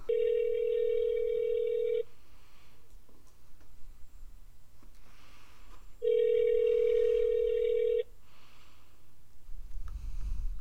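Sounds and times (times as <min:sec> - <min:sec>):
outgoing phone call ringback tone: 0:00.1 - 0:02.1, 0:06.0 - 0:08.1.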